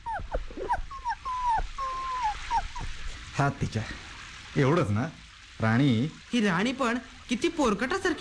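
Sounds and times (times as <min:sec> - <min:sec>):
wet, shivering puppy whimpering in thin high whines: 0:00.0 - 0:03.1
speech: 0:03.4 - 0:08.1.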